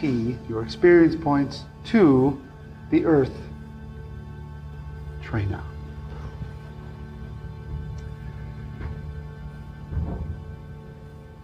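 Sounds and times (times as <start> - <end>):
speech: 0.0 - 3.5, 5.3 - 5.7
thunder rumbling: 9.9 - 10.7.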